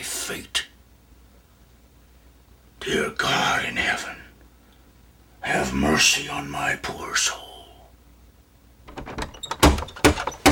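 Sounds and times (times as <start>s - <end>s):
speech: 0.3s - 0.6s, 2.8s - 4.2s, 5.4s - 7.4s
knocks on a wooden hotel room door: 8.9s - 10.5s.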